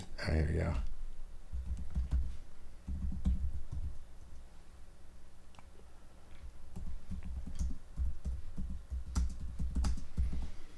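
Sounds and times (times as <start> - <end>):
speech: 0.2 - 0.9
typing on a computer keyboard: 2.9 - 3.9, 6.7 - 10.3.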